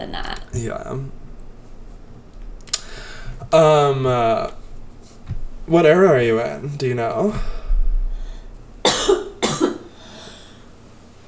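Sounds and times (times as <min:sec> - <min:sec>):
speech: 0:00.0 - 0:01.2, 0:03.5 - 0:04.6, 0:05.7 - 0:07.6
faint noise: 0:00.0 - 0:11.2
person coughing after smoking a joint: 0:08.8 - 0:10.4.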